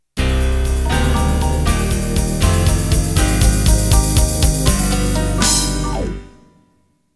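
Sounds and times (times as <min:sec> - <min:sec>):
ballad intro music in 6/8 12/8 time: 0:00.2 - 0:06.6.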